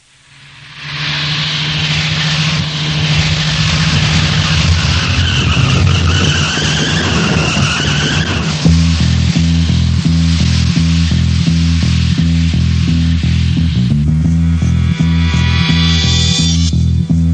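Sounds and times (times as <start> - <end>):
low rumble: 0.0 - 17.3
car engine roaring at speed: 0.1 - 17.3
tyres skidding and squealing: 1.6 - 8.9.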